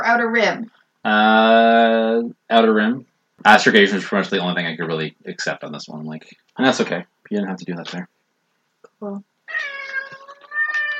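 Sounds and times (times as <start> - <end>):
speech: 0.1 - 8.1, 9.0 - 9.6
cat meowing: 9.5 - 10.9.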